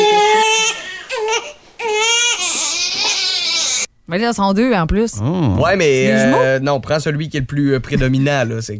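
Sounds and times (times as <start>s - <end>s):
hungry baby crying: 0.0s - 3.9s, 6.0s - 6.5s
speech: 4.2s - 8.7s.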